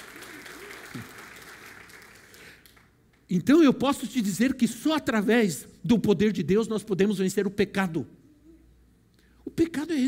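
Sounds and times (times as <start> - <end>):
crowd clapping in dense sustained applause: 0.0 - 3.0
speech: 3.3 - 8.2.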